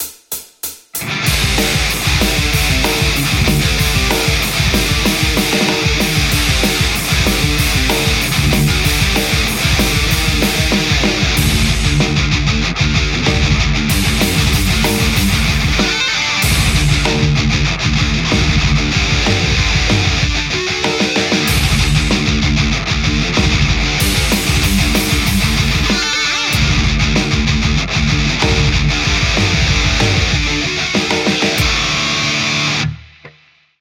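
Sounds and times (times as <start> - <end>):
Telecaster electric guitar playing metal: 1.0 - 33.3.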